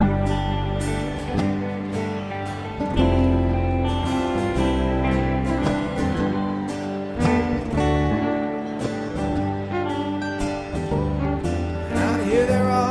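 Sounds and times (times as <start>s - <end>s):
strings: 0.0s - 12.8s.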